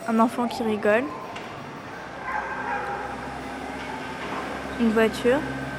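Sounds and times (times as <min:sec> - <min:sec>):
speech: 0:00.1 - 0:01.2, 0:04.8 - 0:05.6
dog growling and barking: 0:02.2 - 0:03.3.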